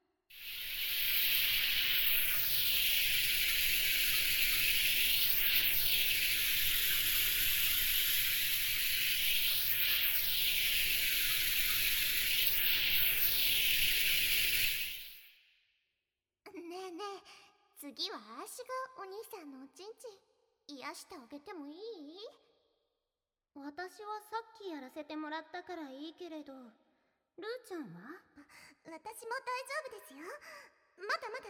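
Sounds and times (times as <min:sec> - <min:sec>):
shower water spraying: 0:00.3 - 0:15.3
speech: 0:18.6 - 0:22.4, 0:23.6 - 0:26.8, 0:27.4 - 0:31.4.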